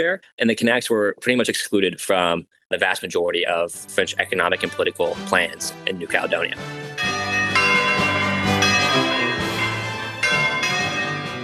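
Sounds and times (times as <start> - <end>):
speech: 0.0 - 7.1
church bells pealing in celebration: 6.9 - 11.4.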